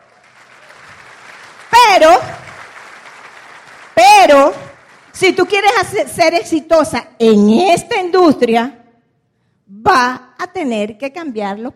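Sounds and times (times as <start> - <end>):
crowd applauding: 0.0 - 5.6
speech: 2.0 - 2.4, 4.3 - 4.6, 5.2 - 8.8, 9.8 - 11.7.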